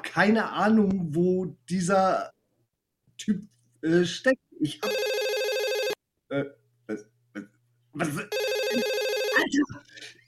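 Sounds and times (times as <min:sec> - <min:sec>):
speech: 0:00.2 - 0:02.4, 0:03.2 - 0:05.1, 0:06.3 - 0:10.2
electronic telephone ringing: 0:04.8 - 0:06.0, 0:08.3 - 0:09.6.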